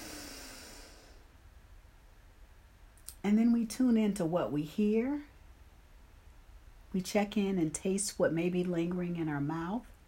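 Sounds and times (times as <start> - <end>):
deep breath in: 0.0 - 1.3
speech: 3.2 - 5.3, 6.9 - 9.9.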